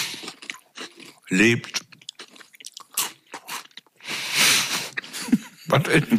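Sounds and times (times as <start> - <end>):
crunchy food being chewed: 0.0 - 4.0
speech: 1.3 - 1.8, 5.7 - 6.1.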